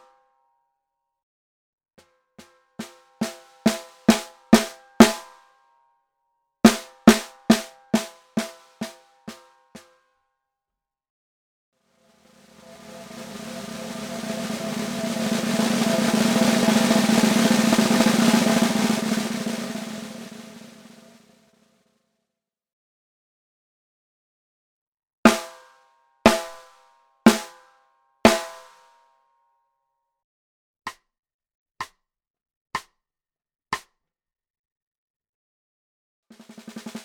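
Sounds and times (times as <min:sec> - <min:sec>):
vintage mahogany koa med drum: 0:02.8 - 0:05.3, 0:06.7 - 0:09.0, 0:12.2 - 0:21.3, 0:25.3 - 0:25.6, 0:26.3 - 0:27.6, 0:28.3 - 0:28.7, 0:36.4 - 0:37.0.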